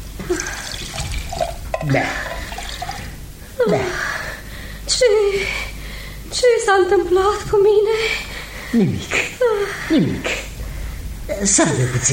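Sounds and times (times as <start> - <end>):
water with drops of alcohol poured into a glass: 0.2 - 3.2
speech: 1.8 - 2.4, 3.6 - 4.1, 6.7 - 10.4, 11.4 - 12.1.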